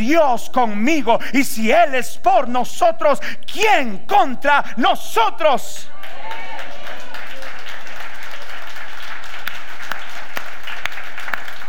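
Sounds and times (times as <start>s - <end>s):
speech: 0.0s - 6.4s
audience applause: 6.0s - 11.6s
sharp individual claps: 9.3s - 11.6s.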